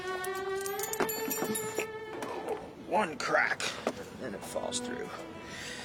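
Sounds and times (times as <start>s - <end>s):
keys jangling while fumbling for a door key: 0.1s - 1.9s
speech: 3.0s - 5.7s.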